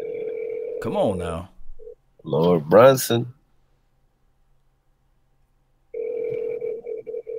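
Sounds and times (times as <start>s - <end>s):
telephone ringback tone of an outgoing call: 0.0s - 0.8s, 6.0s - 7.3s
speech: 0.8s - 1.5s, 2.2s - 3.4s.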